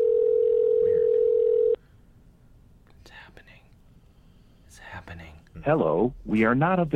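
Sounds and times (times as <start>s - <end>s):
electronic phone ringback tone: 0.0s - 1.8s
speech: 5.6s - 6.9s.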